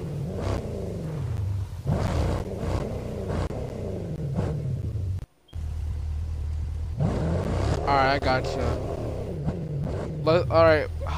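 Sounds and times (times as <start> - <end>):
heavy truck engine rumbling and revving: 0.0 - 11.1
speech: 7.9 - 8.8, 10.3 - 11.1.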